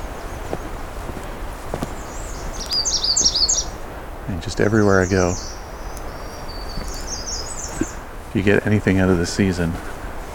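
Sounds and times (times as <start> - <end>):
soft footstep-like thumps: 0.0 - 2.0
American redstarts singing: 0.0 - 10.3
steady outdoor background: 0.0 - 10.3
speech: 4.3 - 5.6, 8.4 - 9.9.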